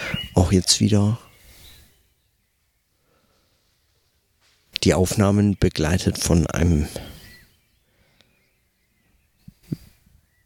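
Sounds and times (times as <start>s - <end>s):
faint birdsong outdoors on a sunny mild day: 0.0s - 10.4s
speech: 0.5s - 1.3s, 4.8s - 7.2s.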